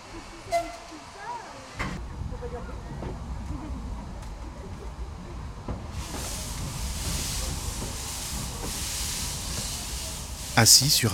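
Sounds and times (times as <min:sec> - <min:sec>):
steam train rumbling: 0:00.0 - 0:11.1
hiss of escaping steam from a steam train: 0:05.9 - 0:11.1
speech: 0:10.6 - 0:11.1.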